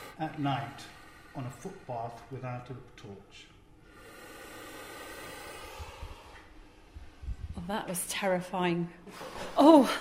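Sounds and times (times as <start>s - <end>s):
puff adder puffing and hissing in an opened cage: 0.0s - 0.2s, 3.9s - 6.4s
speech: 0.2s - 3.5s, 7.6s - 9.9s.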